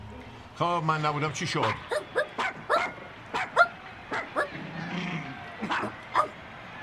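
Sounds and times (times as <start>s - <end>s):
speech: 0.6s - 1.9s
dog barking: 1.6s - 4.5s, 5.6s - 6.4s.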